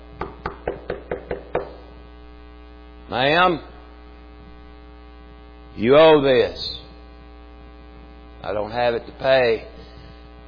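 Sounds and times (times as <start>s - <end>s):
faint low electrical hum: 0.0s - 10.4s
knocking on a door: 0.2s - 1.8s
speech: 3.1s - 3.7s, 5.8s - 6.8s, 8.4s - 9.8s.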